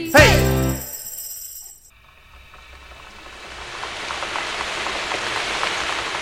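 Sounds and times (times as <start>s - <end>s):
steady rain pattering in a dense hissing wash: 2.5s - 6.2s.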